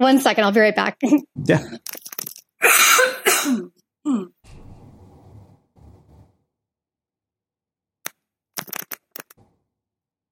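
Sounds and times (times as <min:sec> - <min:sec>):
speech: 0:00.0 - 0:04.4
person coughing hard: 0:02.6 - 0:04.4.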